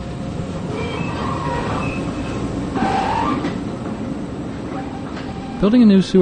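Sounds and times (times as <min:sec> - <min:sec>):
small electric work train rumbling through a sewer tunnel: 0:00.0 - 0:06.2
work train wheels squealing: 0:00.7 - 0:03.7, 0:04.7 - 0:05.7
speech: 0:05.6 - 0:06.2.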